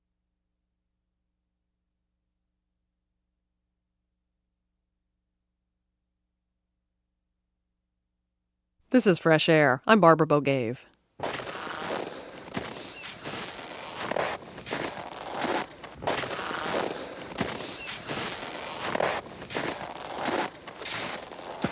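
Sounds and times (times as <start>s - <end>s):
speech: 8.9s - 11.4s
footsteps of a trekker crossing ice- and snow-covered ground in Antarctica: 11.2s - 21.7s.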